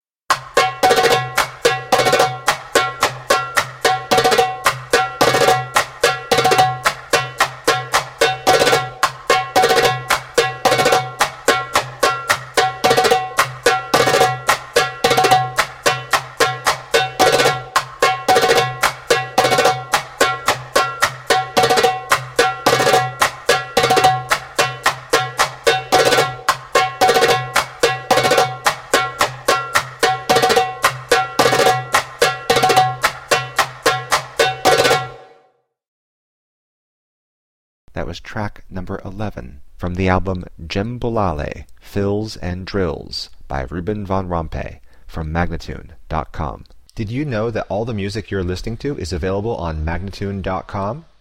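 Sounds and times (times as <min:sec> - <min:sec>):
djembe drumming: 0:00.3 - 0:35.3
person speaking fast in awkward accents: 0:37.9 - 0:51.1.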